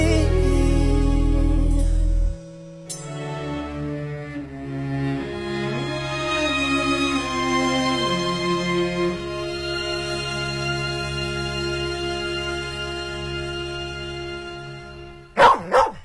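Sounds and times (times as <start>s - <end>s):
long steady musical drone: 0.0s - 15.4s
dog barking: 15.4s - 16.0s.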